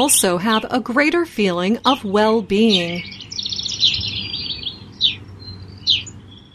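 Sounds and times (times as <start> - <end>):
speech: 0.0 - 3.2
low steady rumble: 0.0 - 6.5
several kinds of birds chirping and singing outdoors: 2.6 - 6.5.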